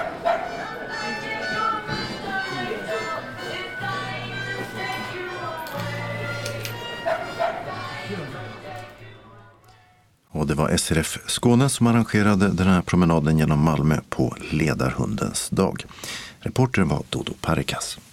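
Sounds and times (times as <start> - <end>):
dogs barking and yipping in a busy indoor space: 0.0 - 0.9, 6.6 - 8.0
crowd chatter: 0.0 - 9.5
speech: 10.5 - 18.1.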